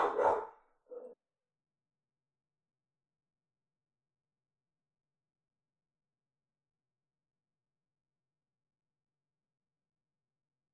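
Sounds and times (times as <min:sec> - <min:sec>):
dog barking excitedly: 0:00.0 - 0:01.2.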